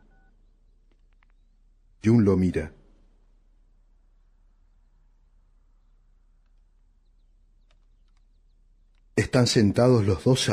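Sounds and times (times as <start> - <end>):
telephone keypad dual-tone beeps: 0.0 - 0.3
low steady room hum: 0.0 - 10.5
speech: 2.0 - 2.8, 9.3 - 10.5.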